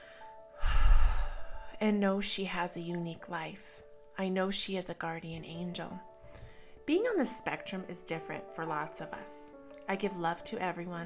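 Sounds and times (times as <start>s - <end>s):
person drawing a deep breath: 0.0s - 1.8s
speech: 1.8s - 6.1s, 6.9s - 11.0s.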